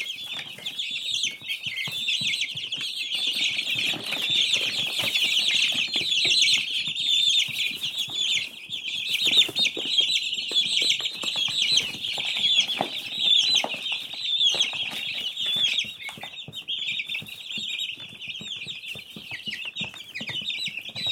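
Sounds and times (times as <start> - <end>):
newly hatched chicks peeping: 0.0 - 21.1.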